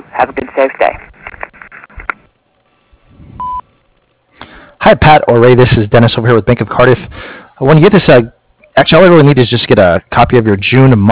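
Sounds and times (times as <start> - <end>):
speech: 0.2 - 1.0, 4.9 - 11.1
answering machine beep: 3.4 - 3.6.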